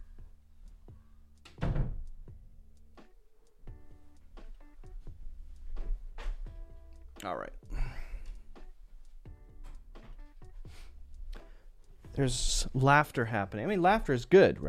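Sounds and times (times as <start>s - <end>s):
door being closed: 1.4s - 2.2s
speech: 7.2s - 7.6s, 12.2s - 14.6s.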